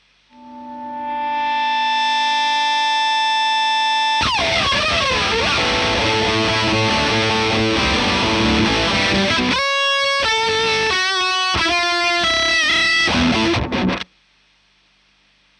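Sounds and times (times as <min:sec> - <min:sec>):
guitar line through Marshall amplifier: 0:00.3 - 0:14.1.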